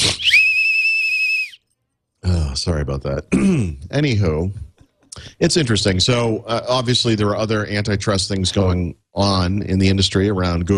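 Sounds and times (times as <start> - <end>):
shrill whistle blast: 0.0 - 1.7
speech: 2.6 - 4.7, 5.4 - 10.7.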